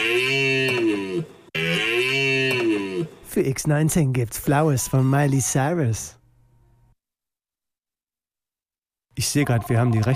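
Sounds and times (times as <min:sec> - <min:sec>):
goofy nasal moose call: 0:00.0 - 0:03.2
speech: 0:03.4 - 0:06.2, 0:09.2 - 0:10.1.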